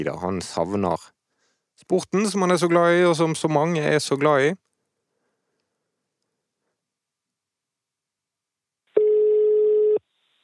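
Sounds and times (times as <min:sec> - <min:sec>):
speech: 0:00.0 - 0:01.2, 0:01.8 - 0:04.7
telephone ringback tone while calling: 0:09.0 - 0:10.0.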